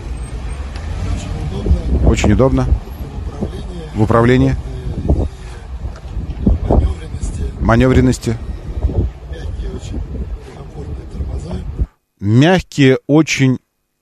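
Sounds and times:
wind buffeting an unshielded microphone: 0:01.3 - 0:11.9
speech: 0:02.1 - 0:02.9, 0:04.0 - 0:05.1, 0:07.7 - 0:08.5, 0:12.2 - 0:13.6.

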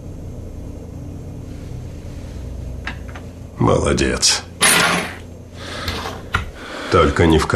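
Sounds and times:
speech: 0:03.6 - 0:04.5, 0:06.9 - 0:07.5
tossed 1958 coin landing with a bright metallic clink: 0:04.6 - 0:05.2.

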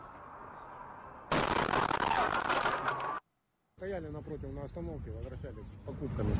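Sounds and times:
bus explosion: 0:01.3 - 0:03.2
speech: 0:03.8 - 0:06.3.

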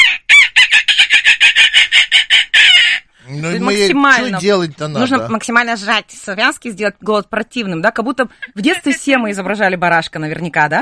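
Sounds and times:
person imitating seagull cries as a vocal exercise: 0:00.0 - 0:04.4
speech: 0:03.8 - 0:10.7.

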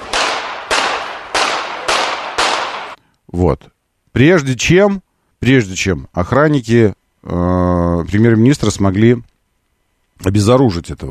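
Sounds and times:
gunshots in a played news recording: 0:00.0 - 0:03.0
speech: 0:03.3 - 0:09.3, 0:10.2 - 0:11.0.

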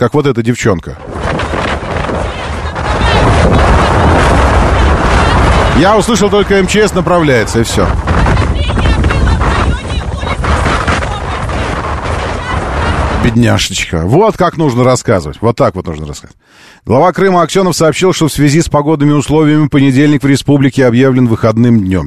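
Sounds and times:
speech: 0:00.0 - 0:01.1, 0:05.8 - 0:09.1, 0:13.2 - 0:22.0
storm wind gusting and buffeting the microphone: 0:00.8 - 0:15.4.

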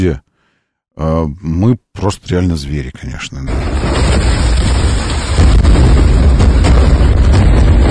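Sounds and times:
speech: 0:00.0 - 0:00.2, 0:01.0 - 0:04.4
airstrike bomb explosions at a hospital parking lot: 0:03.5 - 0:07.8
sharp cracks and pops: 0:03.5 - 0:07.8.

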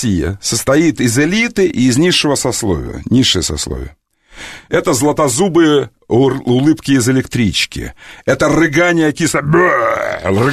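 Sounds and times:
speech: 0:00.0 - 0:10.5
person imitating a belch of sour cabbage: 0:09.7 - 0:10.5.

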